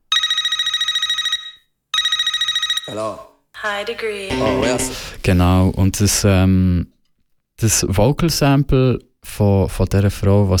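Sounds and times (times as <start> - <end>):
electronic telephone ringtone from a dance track intro: 0.1 - 2.9
speech: 2.9 - 7.0, 7.6 - 10.5.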